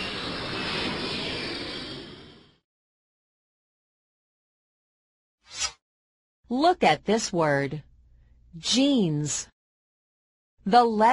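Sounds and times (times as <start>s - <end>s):
jet airplane engine roar: 0.0s - 2.6s
short sharp whoosh: 0.0s - 2.6s
speech: 6.5s - 7.9s, 8.5s - 9.5s, 10.6s - 11.1s.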